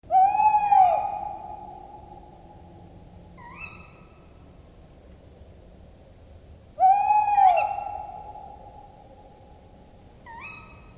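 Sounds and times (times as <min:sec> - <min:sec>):
male tawny owl courtship hooting at night: 0:00.1 - 0:02.8, 0:03.4 - 0:04.2, 0:06.8 - 0:09.1, 0:10.2 - 0:10.9.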